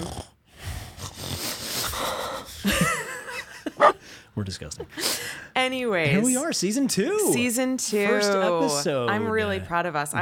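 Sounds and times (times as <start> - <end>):
person making wheezy snorting noises imitating a snoring dog: 0.0 - 2.1
laughter: 2.5 - 5.1
speech: 4.4 - 10.2.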